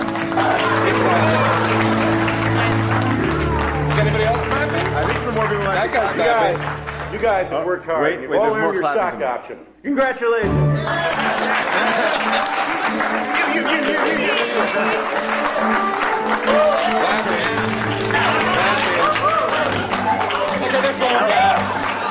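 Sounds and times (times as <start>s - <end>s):
loud sustained audience applause: 0.0s - 7.7s, 10.8s - 22.0s
faint voices and cheers in a crowd: 0.2s - 2.3s, 13.2s - 22.0s
laughter: 0.3s - 2.5s, 10.8s - 15.5s, 16.4s - 22.0s
speech: 7.1s - 17.5s.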